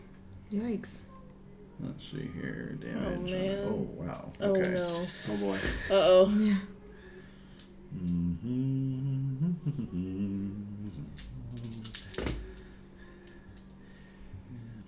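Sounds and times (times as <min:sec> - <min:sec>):
speech: 0:00.5 - 0:01.1, 0:01.8 - 0:06.7, 0:07.9 - 0:11.8
dice tumbling down through a dice tower: 0:04.6 - 0:05.6, 0:11.2 - 0:12.4
drawn-out vocal sound: 0:07.8 - 0:13.2.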